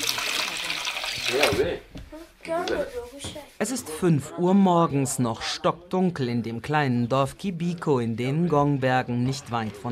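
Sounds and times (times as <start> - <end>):
milk pouring into a black pot in a village in the Ngong Hills, Kenya: 0.0 - 1.5
speech: 1.2 - 9.9.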